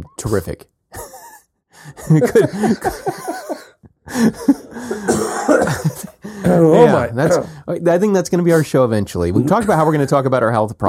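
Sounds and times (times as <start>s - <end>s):
speech: 0.0s - 0.8s, 1.8s - 3.5s, 4.1s - 5.2s, 6.4s - 10.8s
laughter: 2.0s - 7.4s
harsh coughing and hacking: 2.1s - 7.5s
throat clearing: 4.8s - 6.6s.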